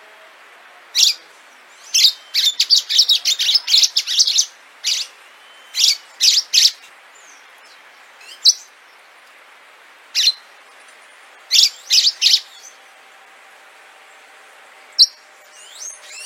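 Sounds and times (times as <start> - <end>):
orange-fronted yellow finch chirping: 1.8 - 6.9, 11.5 - 12.8, 14.9 - 16.2.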